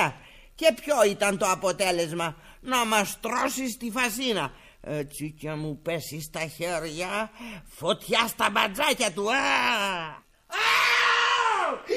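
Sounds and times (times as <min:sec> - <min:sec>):
speech: 0:00.0 - 0:10.8
witch's terrible warning scream performed by a voice: 0:10.5 - 0:11.9.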